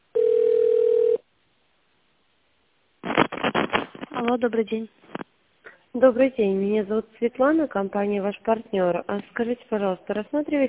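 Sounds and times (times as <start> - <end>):
telephone ringback tone while call is forwarded to an operator: 0.2 - 1.2
speech: 4.2 - 5.1, 6.0 - 10.6.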